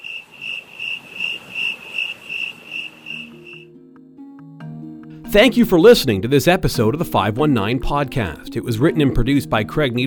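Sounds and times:
crickets chirping in a high trill: 0.0 - 3.8
speech: 5.3 - 10.0.

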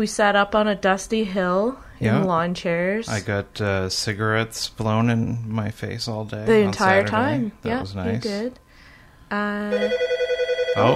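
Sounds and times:
speech: 0.0 - 8.6, 9.3 - 10.2, 10.8 - 10.9
telephone ringing with warbling electronic trill: 9.7 - 10.9.

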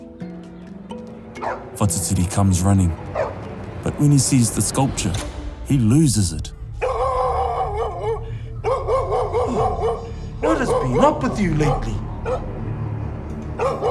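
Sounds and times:
dog barking and yelping with whiny tones: 1.4 - 1.7, 3.1 - 3.4, 6.8 - 12.5, 13.6 - 13.8
speech: 1.4 - 3.2, 4.0 - 6.6, 10.9 - 12.0.

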